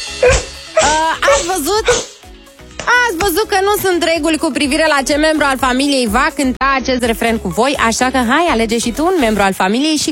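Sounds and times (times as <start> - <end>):
speech: 0.2 - 2.1, 3.1 - 10.0
dog barking: 0.2 - 2.2.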